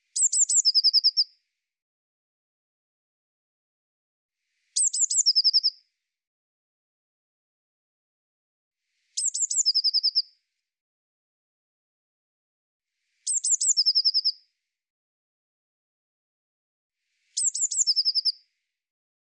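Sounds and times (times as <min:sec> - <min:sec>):
Eurasian blue tit phrase of piercing high notes and rapid trill: 0:00.0 - 0:01.2, 0:04.8 - 0:05.7, 0:09.2 - 0:10.2, 0:13.3 - 0:14.3, 0:17.4 - 0:18.4.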